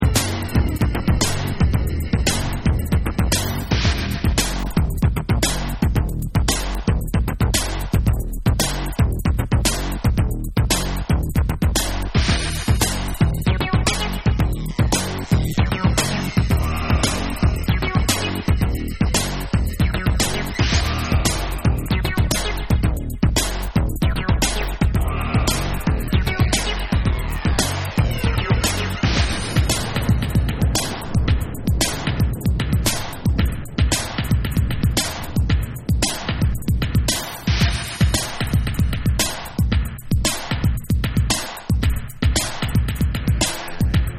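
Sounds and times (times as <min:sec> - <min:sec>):
bass instrumental music: 0:00.0 - 0:44.1.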